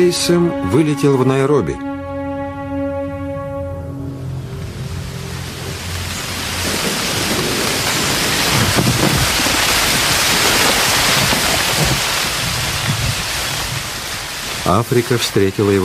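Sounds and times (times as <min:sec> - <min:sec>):
speech: 0:00.0 - 0:02.0, 0:14.7 - 0:15.8
low droning hum: 0:02.7 - 0:11.0
heavy rain in a hurricane: 0:03.4 - 0:15.8
hurricane wind: 0:03.7 - 0:15.1.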